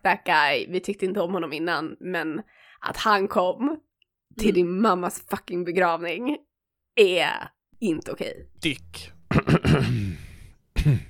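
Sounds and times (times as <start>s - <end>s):
speech: 0.0s - 11.0s
drawn-out gravelly throat clearing: 9.3s - 11.0s
harsh coughs: 9.3s - 11.0s.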